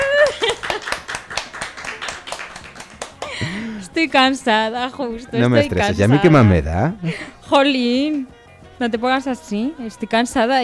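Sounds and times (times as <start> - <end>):
audience clapping rhythmically: 0.0 - 3.6
speech: 4.0 - 10.6.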